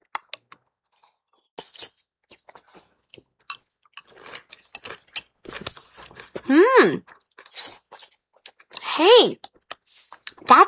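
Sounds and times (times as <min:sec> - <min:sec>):
biting and chewing chili with crunchy corn chips: 0:04.0 - 0:06.5
speech: 0:06.5 - 0:07.2, 0:09.0 - 0:09.4.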